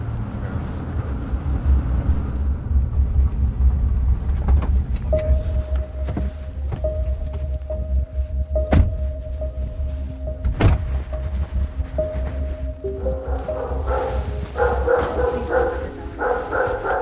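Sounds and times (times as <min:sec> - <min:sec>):
low rumble: 0:00.0 - 0:16.9
heavy thumps: 0:05.7 - 0:12.7
big dog barking: 0:13.1 - 0:16.9.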